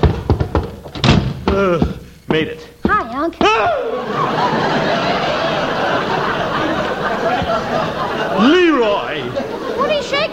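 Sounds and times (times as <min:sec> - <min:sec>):
stuck house door off a porch being shoved and rattled: 0:00.0 - 0:02.0
speech: 0:01.6 - 0:05.4, 0:07.2 - 0:10.3
laughter: 0:03.5 - 0:10.3.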